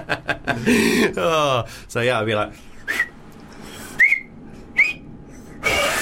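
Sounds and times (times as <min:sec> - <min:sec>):
speech: 0:00.1 - 0:02.7
person attempting to whistle with two thumbs in the mouth: 0:02.8 - 0:03.2, 0:03.8 - 0:05.1.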